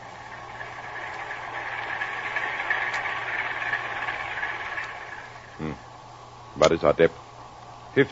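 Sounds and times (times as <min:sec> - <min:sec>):
ship's heavy engines and twin propellers churning: 0:00.0 - 0:05.6
constant low hum: 0:00.0 - 0:07.9
speech: 0:06.6 - 0:07.2.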